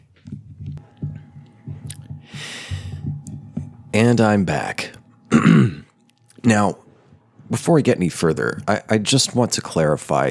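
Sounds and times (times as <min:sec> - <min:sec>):
person drinking water, gulping and swallowing: 0:01.9 - 0:02.1, 0:05.3 - 0:06.4
breathy exhale: 0:02.3 - 0:03.0
speech: 0:04.0 - 0:05.8, 0:06.4 - 0:06.8, 0:07.5 - 0:10.2.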